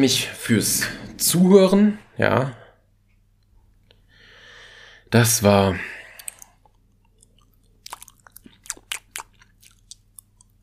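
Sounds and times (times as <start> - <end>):
speech: 0.0 - 2.6, 5.1 - 6.0
low steady hum: 0.0 - 10.6
wet chewing and lip-smacking noises: 6.2 - 10.6.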